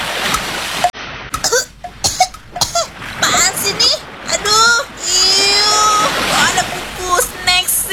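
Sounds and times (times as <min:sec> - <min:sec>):
rush of water after plunging into the sea: 0:00.0 - 0:07.9
person sputtering, choking and coughing after plunging into the sea: 0:01.4 - 0:02.9.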